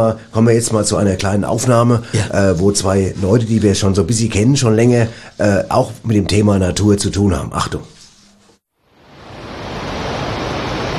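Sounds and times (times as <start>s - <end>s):
speech: 0.0s - 8.0s
roaring masses of rushing water: 9.0s - 10.9s.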